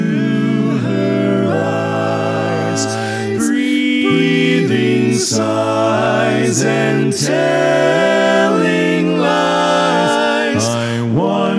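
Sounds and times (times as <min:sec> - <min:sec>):
tenor voice: 0:00.1 - 0:11.4.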